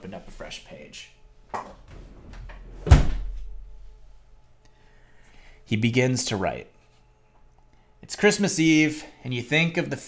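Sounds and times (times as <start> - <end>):
speech: 0.1 - 1.9, 5.7 - 6.7, 8.0 - 10.0
door shutting with a solid thud: 1.6 - 3.7.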